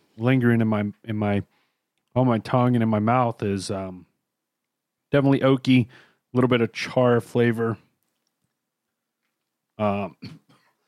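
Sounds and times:
speech: 0.2 - 4.1, 5.1 - 7.8, 9.8 - 10.4
person coughing harshly: 10.1 - 10.8.

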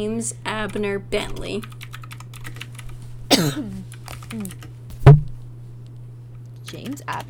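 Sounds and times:
speech: 0.0 - 1.8, 3.4 - 4.7, 6.7 - 7.2
computer keyboard typing: 1.6 - 2.9, 6.7 - 7.2.

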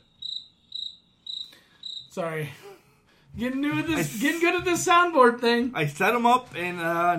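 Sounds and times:
crickets chirping: 0.0 - 2.2
speech: 2.2 - 2.7, 3.4 - 7.1.

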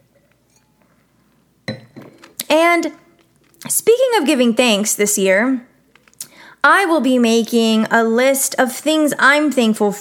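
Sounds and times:
glasses clinking in a toast: 0.1 - 1.0, 1.6 - 2.3
speech: 2.5 - 3.0, 3.7 - 5.7, 6.6 - 9.9.

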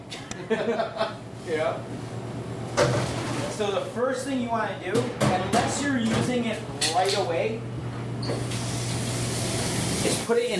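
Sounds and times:
laughter: 0.2 - 1.2
speech: 0.5 - 2.2, 2.8 - 8.8, 10.3 - 10.5
cold tap water running for rinsing food: 8.3 - 10.3.

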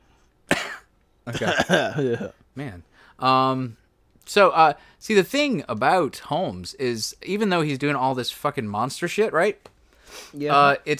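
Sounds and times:
cough: 0.5 - 2.4
speech: 1.3 - 10.9.

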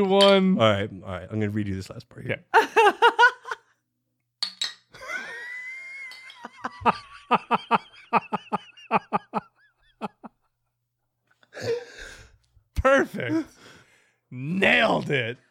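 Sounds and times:
speech: 0.0 - 3.3, 6.8 - 9.1, 13.1 - 13.5, 14.3 - 15.4
laughter: 2.6 - 3.7, 5.0 - 10.4
glasses clinking in a toast: 4.4 - 5.1, 5.9 - 6.7.

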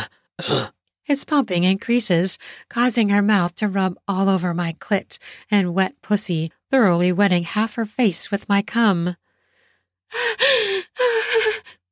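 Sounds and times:
speech: 0.4 - 9.2, 10.1 - 11.8
woman gasping: 10.1 - 11.8.

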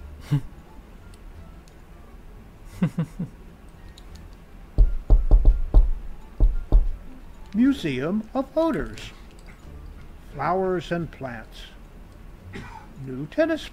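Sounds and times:
speech: 0.3 - 0.5, 2.8 - 3.4, 7.6 - 9.2, 10.4 - 11.8, 12.5 - 13.7
knocking on a door: 4.8 - 7.0.

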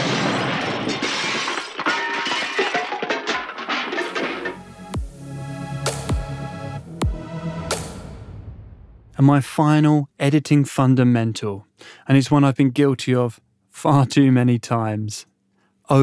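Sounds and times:
loud chaotic crash of shattering and breaking debris: 0.0 - 4.8
sharp sweeping impacts: 4.0 - 9.2
speech: 9.2 - 15.3, 15.9 - 16.0.

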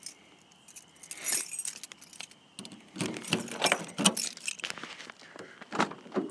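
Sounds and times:
car keys jangling outdoors on a cool night in southern New Hampshire: 0.0 - 4.7.

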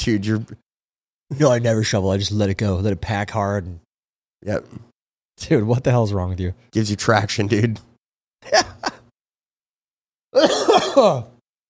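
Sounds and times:
speech: 0.0 - 0.6, 1.3 - 3.8, 4.4 - 8.8, 10.4 - 11.3
harsh raspy throat-clearing coughs: 10.4 - 11.3.

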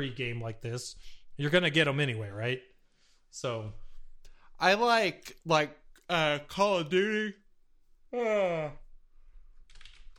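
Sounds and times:
speech: 0.0 - 2.7, 3.3 - 3.8, 4.6 - 7.4, 8.1 - 8.8
person yawning: 8.1 - 8.9
light typing on a keyboard: 9.7 - 10.1.

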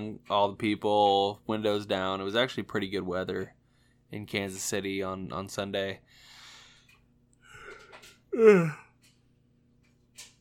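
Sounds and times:
speech: 0.0 - 6.3, 8.4 - 8.8
faint breath: 6.1 - 8.2
person yawning: 7.6 - 8.9.

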